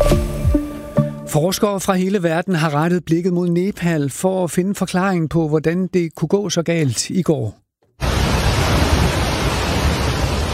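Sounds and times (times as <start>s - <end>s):
speech: 1.3s - 7.6s
rushing brown floodwater sweeping buildings and cars: 8.0s - 10.5s.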